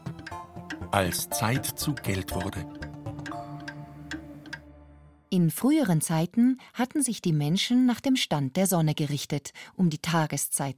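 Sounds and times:
mechanical clock ticking: 0.0s - 4.7s
speech: 0.9s - 2.8s, 5.3s - 10.7s.

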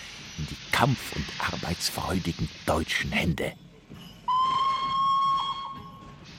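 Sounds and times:
low rumbling hiss of noise: 0.0s - 4.3s
speech: 0.5s - 3.6s
steam locomotive whistle blast: 4.3s - 6.0s.

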